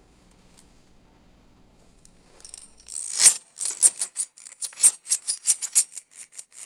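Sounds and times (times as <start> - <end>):
rhythmic metallic chain and quickdraw clinking: 2.2 - 6.3.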